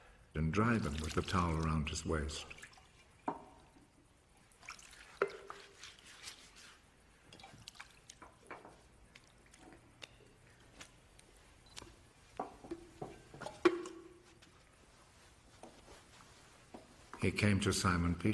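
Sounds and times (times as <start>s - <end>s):
speech: 0.4s - 2.7s, 17.2s - 18.3s
water splashing and dripping in a wash basin: 0.5s - 10.4s.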